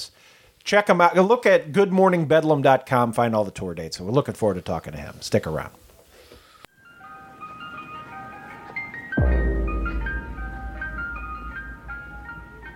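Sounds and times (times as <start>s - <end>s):
speech: 0.7s - 5.8s
tinkly ice cream truck jingle: 6.8s - 12.7s
deep low rumble: 9.2s - 12.7s.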